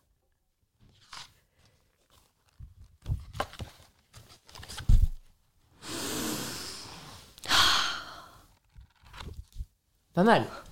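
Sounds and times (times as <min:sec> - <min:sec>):
book pages rustling and turning as it is opened: 0:00.8 - 0:05.4, 0:08.4 - 0:09.8
speech: 0:10.2 - 0:10.7.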